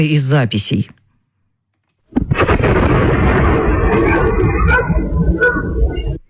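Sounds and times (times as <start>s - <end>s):
speech: 0.0s - 1.0s
explosion booming overhead with rumbling roar: 2.1s - 6.2s.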